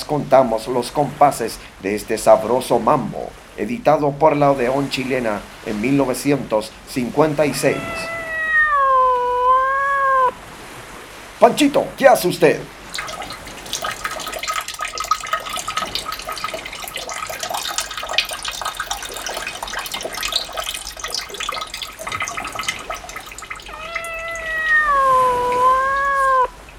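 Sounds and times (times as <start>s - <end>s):
speech: 0.1s - 8.2s, 11.4s - 13.1s
kitten meowing long and wavering: 7.6s - 10.4s, 23.2s - 26.6s
kitten urine pouring into a bottle: 12.8s - 26.7s.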